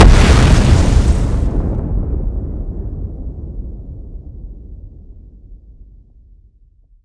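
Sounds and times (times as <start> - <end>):
bomb exploding: 0.0 - 4.6.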